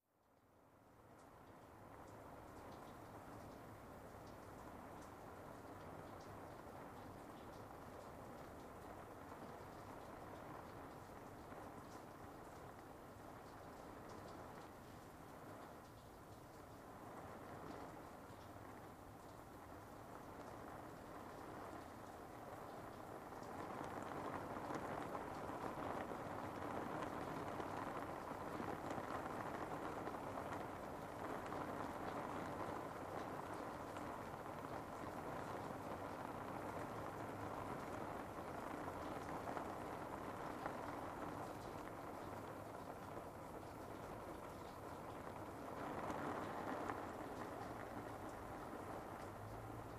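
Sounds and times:
medium rain on a roof: 0:00.0 - 0:49.9.

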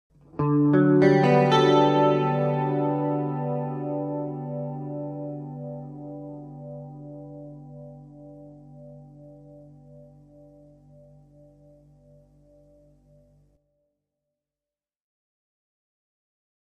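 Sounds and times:
melancholy electric guitar: 0:00.2 - 0:13.4.

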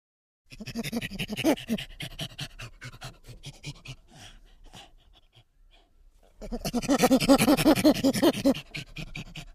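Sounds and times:
chimpanzee panting: 0:00.5 - 0:09.5.

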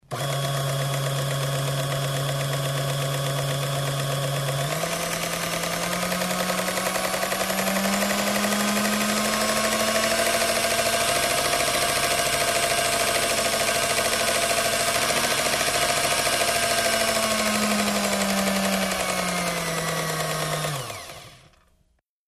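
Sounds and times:
food mixer starting and accelerating: 0:00.0 - 0:21.9.

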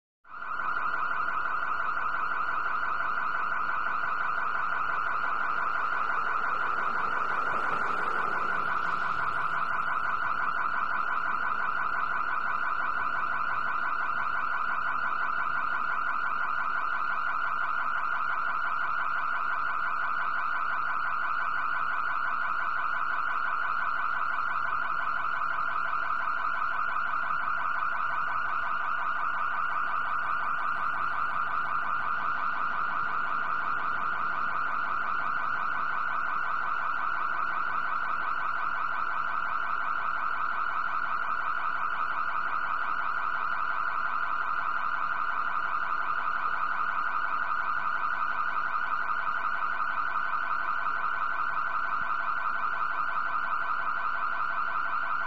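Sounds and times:
fast oscillating car alarm: 0:00.3 - 0:55.2.

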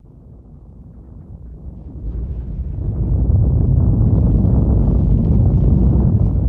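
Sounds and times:
earthquake rumble: 0:00.0 - 0:06.4.

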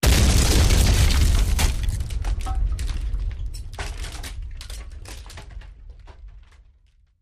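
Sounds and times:
explosion: 0:00.0 - 0:05.1
wood debris: 0:00.0 - 0:07.1.

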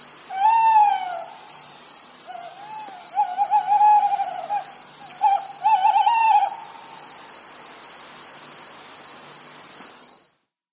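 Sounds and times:
cricket chirping in short high pulsed bursts: 0:00.0 - 0:10.5
steady high hiss: 0:00.0 - 0:10.5
low wavering call: 0:02.3 - 0:06.8.

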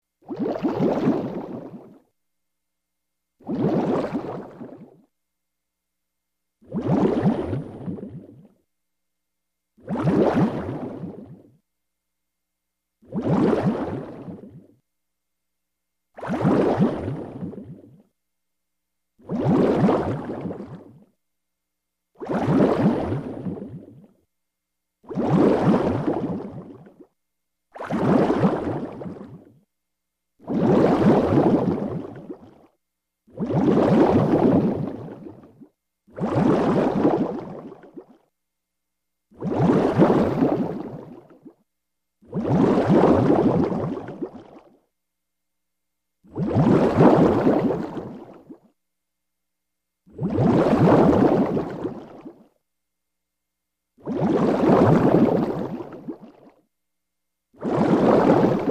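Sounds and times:
bubbles released: 0:00.2 - 0:02.0, 0:03.4 - 0:05.1, 0:06.6 - 0:08.5, 0:09.8 - 0:11.5, 0:13.0 - 0:14.8, 0:16.2 - 0:18.1, 0:19.2 - 0:21.1, 0:22.2 - 0:24.1, 0:25.0 - 0:27.1, 0:27.7 - 0:29.6, 0:30.4 - 0:32.7, 0:33.3 - 0:38.2, 0:39.4 - 0:41.6, 0:42.2 - 0:44.8, 0:46.3 - 0:48.7, 0:50.1 - 0:52.5, 0:54.0 - 0:56.6, 0:57.6 - 0:58.7.

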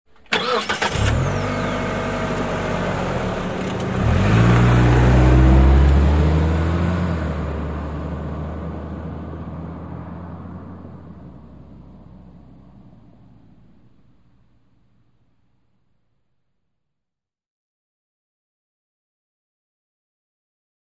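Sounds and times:
sedan accelerating at medium speed: 0:00.3 - 0:15.0.

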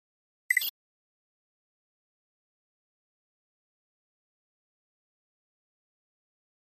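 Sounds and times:
flash electronic double beep: 0:00.5 - 0:00.7.

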